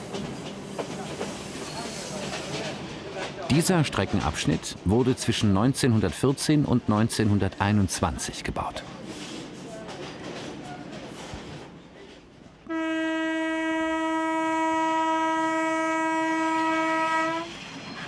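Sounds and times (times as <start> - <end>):
2000 hp Alstom diesel-electric locomotive rumbling along the track: 0.0 - 12.6
speech: 3.5 - 9.0
Alstom diesel-electric locomotive horn blast: 12.7 - 17.6.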